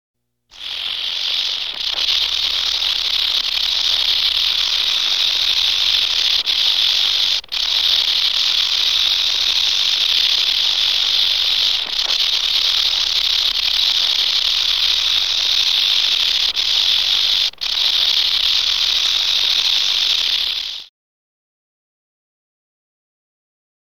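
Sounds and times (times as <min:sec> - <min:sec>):
rattlesnake rattling: 0:00.5 - 0:20.9.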